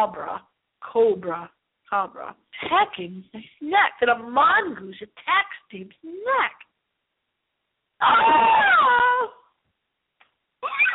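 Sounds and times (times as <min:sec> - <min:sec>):
speech: 0:00.0 - 0:06.7, 0:08.0 - 0:09.4
woman screaming in a horror movie clip: 0:08.0 - 0:09.5, 0:10.6 - 0:10.9.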